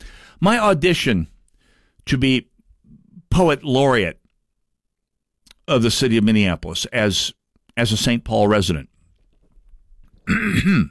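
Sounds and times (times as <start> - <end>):
speech: 0.4 - 1.3, 2.0 - 2.5, 3.4 - 4.2, 5.7 - 8.9, 10.3 - 10.8
loud rough guttural throat clearing: 10.2 - 10.8.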